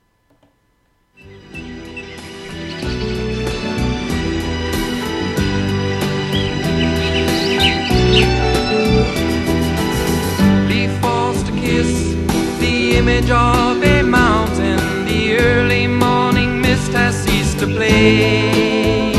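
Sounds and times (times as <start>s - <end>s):
faint bird-like chirps: 1.2s - 10.4s
instrumental passage of a folk song: 1.2s - 19.1s.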